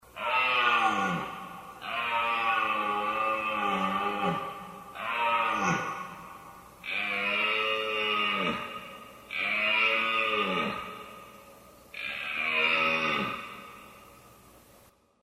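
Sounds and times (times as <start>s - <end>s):
red deer roaring during the rut: 0.2s - 6.1s, 6.8s - 11.0s, 12.0s - 13.8s.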